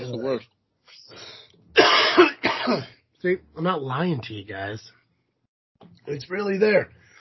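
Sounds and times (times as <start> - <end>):
harsh cough with throat clearing: 1.8 - 3.0
speech: 2.7 - 5.0, 5.8 - 7.0.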